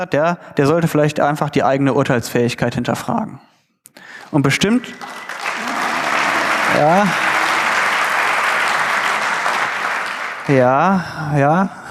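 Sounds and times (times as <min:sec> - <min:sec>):
speech: 0:00.0 - 0:05.3, 0:06.7 - 0:07.3, 0:10.5 - 0:11.8
audience applause: 0:04.3 - 0:11.0.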